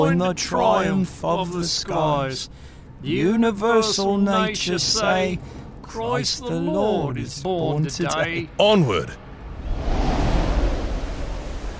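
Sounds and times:
speech: 0:00.0 - 0:09.2
heaving ocean waves roaring with hissing spray: 0:08.0 - 0:11.7.

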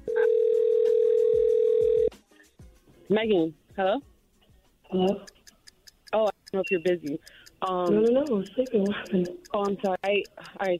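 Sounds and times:
telephone dial tone: 0:00.1 - 0:02.1
speech: 0:03.1 - 0:04.1, 0:04.9 - 0:05.3, 0:06.1 - 0:10.7.

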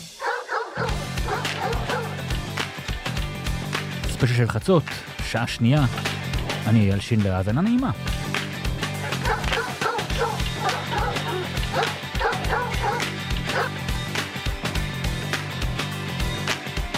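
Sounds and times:
dog barking while being played with: 0:00.2 - 0:02.3, 0:09.0 - 0:13.9
loud full-band music: 0:00.8 - 0:04.3, 0:07.9 - 0:16.9
speech: 0:04.2 - 0:08.2.

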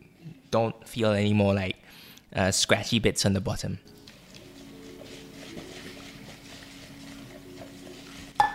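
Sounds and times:
speech: 0:00.5 - 0:04.0
whisking milk and cream into sugar in a bowl: 0:03.9 - 0:08.5.

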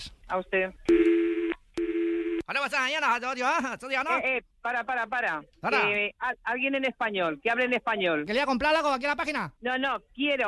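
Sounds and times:
speech: 0:00.3 - 0:01.0, 0:02.5 - 0:10.4
electronic telephone tones during call transfer: 0:00.9 - 0:02.4.

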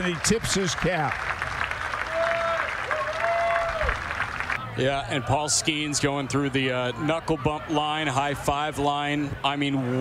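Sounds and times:
speech: 0:00.0 - 0:01.5, 0:04.8 - 0:09.9
minor-league baseball crowd clapping and cheering: 0:00.0 - 0:04.8.

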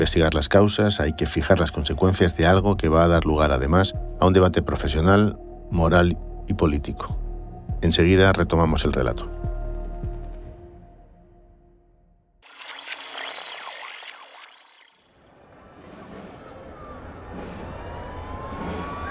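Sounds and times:
speech: 0:00.0 - 0:07.2, 0:07.8 - 0:09.4
street noise: 0:15.1 - 0:19.1
emergency sirens of many fire trucks wailing in the streets during a funeral procession: 0:15.2 - 0:19.1.

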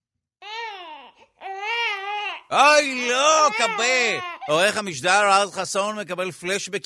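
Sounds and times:
baby crying in loud harmonic wails: 0:00.4 - 0:05.0
speech: 0:02.5 - 0:06.8.

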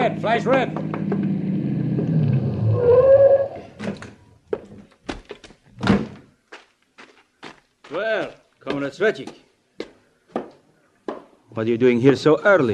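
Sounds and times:
speech: 0:00.0 - 0:01.3, 0:07.9 - 0:09.4, 0:11.6 - 0:12.7
car engine rumbling as it approaches around a curve: 0:00.0 - 0:03.8
short squeal as the car pulls up: 0:01.3 - 0:03.8.

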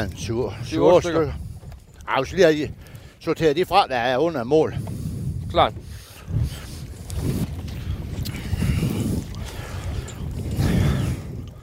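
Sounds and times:
speech: 0:00.0 - 0:01.4, 0:02.1 - 0:06.4
boat noise: 0:00.0 - 0:11.6
gusty wind across open water: 0:00.0 - 0:11.6
water noise: 0:00.0 - 0:11.6.

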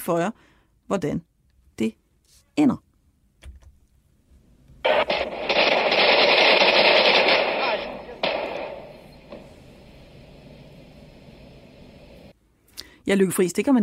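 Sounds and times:
speech: 0:00.0 - 0:02.0, 0:02.6 - 0:02.9, 0:13.1 - 0:13.8
rapid automatic gunfire: 0:04.9 - 0:11.3
sharp gunshots with tail: 0:04.9 - 0:12.3.

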